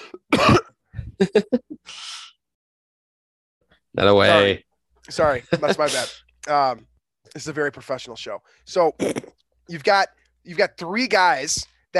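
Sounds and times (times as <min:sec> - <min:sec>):
person coughing harshly: 0:00.0 - 0:00.7
speech: 0:01.2 - 0:02.3, 0:04.0 - 0:11.9.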